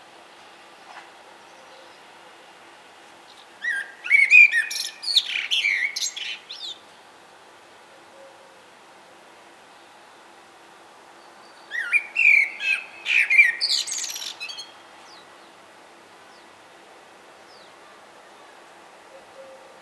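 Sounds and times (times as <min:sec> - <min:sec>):
common blackbird Turdus merula singing: 0:03.3 - 0:06.8, 0:11.2 - 0:15.6.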